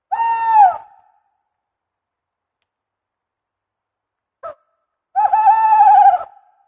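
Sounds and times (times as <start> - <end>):
tawny owl: 0.1 - 1.2, 4.4 - 6.6.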